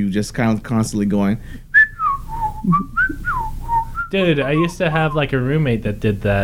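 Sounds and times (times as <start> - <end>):
speech: 0.0 - 1.6, 2.6 - 3.5, 4.1 - 6.4
person whistling a short wavering melody: 1.8 - 5.3.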